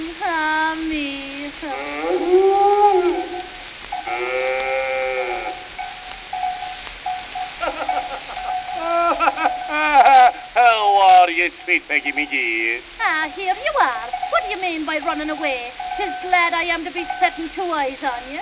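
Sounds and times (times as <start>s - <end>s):
cow mooing: 1.6s - 17.6s
laughter: 7.6s - 12.8s
speech: 11.7s - 18.3s.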